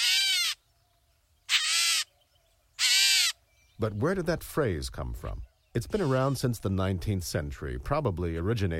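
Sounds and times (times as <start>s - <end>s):
gray catbird giving harsh cat-like mewing calls: 0.0s - 0.6s, 1.4s - 2.2s, 2.8s - 3.5s
speech: 3.8s - 8.7s.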